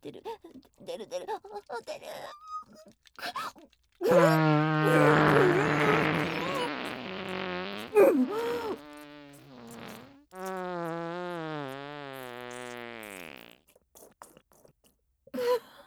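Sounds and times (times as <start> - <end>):
speech: 1.0 - 5.6
loud long fart: 4.0 - 13.6.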